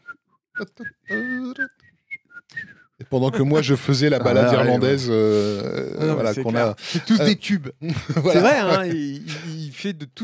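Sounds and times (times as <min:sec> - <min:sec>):
person whistling a military march tune: 0:00.0 - 0:03.0
speech: 0:00.6 - 0:01.8, 0:02.5 - 0:10.2
laughter: 0:03.2 - 0:09.7.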